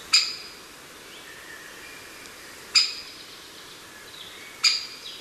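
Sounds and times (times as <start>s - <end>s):
great spotted woodpecker: 0.1s - 0.5s, 2.7s - 3.1s, 4.6s - 5.0s.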